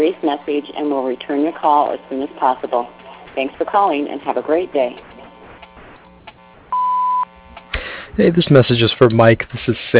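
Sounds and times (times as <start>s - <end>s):
speech: 0.0s - 5.1s, 8.2s - 9.9s
faint hum: 0.0s - 9.9s
answering machine beep: 6.7s - 7.3s.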